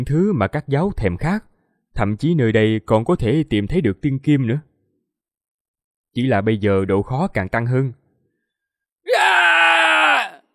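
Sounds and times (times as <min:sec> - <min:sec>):
speech: 0:00.0 - 0:04.7, 0:06.1 - 0:08.0
person screaming: 0:09.1 - 0:10.5.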